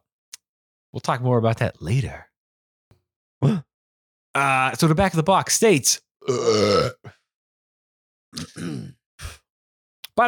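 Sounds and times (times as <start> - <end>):
speech: 0.9 - 2.3, 3.4 - 3.7, 4.4 - 7.2
person sighing: 6.2 - 7.0
loud drawn-out burp: 6.2 - 7.1, 8.4 - 9.0
person grunting: 6.2 - 7.1, 8.4 - 9.0.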